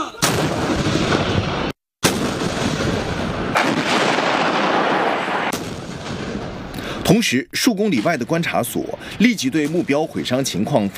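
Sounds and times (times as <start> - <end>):
artillery guns firing shells in a precision strike: 0.2 - 6.7
speech: 7.1 - 10.9.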